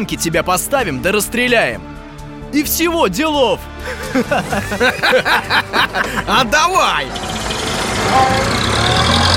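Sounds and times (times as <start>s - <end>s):
speech: 0.0s - 7.4s, 8.0s - 9.1s
laughter: 3.8s - 6.6s
car engine running: 5.6s - 9.3s.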